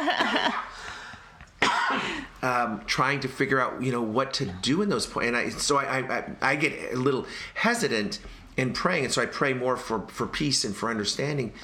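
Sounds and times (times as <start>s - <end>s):
laughter: 0.0s - 1.6s
person coughing: 1.6s - 2.4s
speech: 2.4s - 11.6s.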